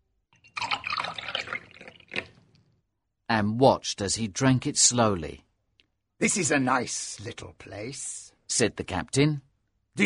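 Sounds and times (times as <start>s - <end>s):
rum pouring into a glass: 0.3s - 2.6s
speech: 3.3s - 5.5s, 6.2s - 10.0s.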